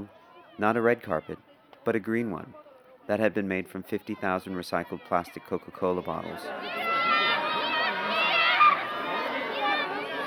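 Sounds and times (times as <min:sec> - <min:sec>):
speech: 0:00.0 - 0:06.9
dense crowd of spectators roaring and shrieking at a premiere: 0:04.2 - 0:10.2.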